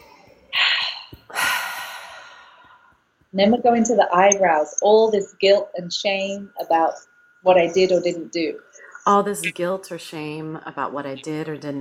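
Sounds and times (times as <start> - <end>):
deep breath during a tapping exercise: 0.6 - 3.0
speech: 3.3 - 11.7.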